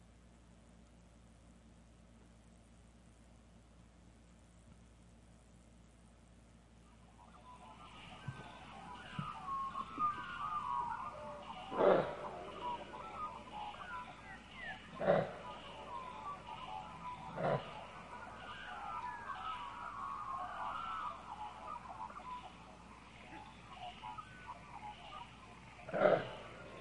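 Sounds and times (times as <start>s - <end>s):
low rumble: 0.0s - 26.8s
kangaroo growling snorts: 11.7s - 12.7s, 14.9s - 15.5s, 17.3s - 17.8s, 25.9s - 26.8s.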